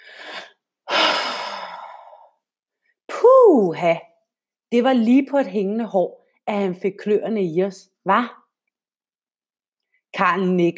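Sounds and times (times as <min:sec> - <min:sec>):
deep breath: 0:00.0 - 0:02.4
speech: 0:03.6 - 0:04.1, 0:04.7 - 0:08.4, 0:10.2 - 0:10.7.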